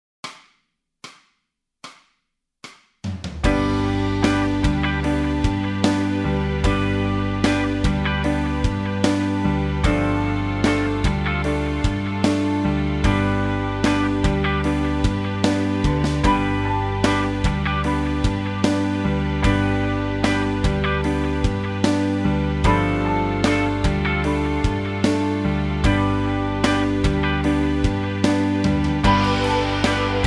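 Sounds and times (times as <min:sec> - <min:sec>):
backing track music: 0:03.1 - 0:30.2
guitar playing scales: 0:03.5 - 0:30.2.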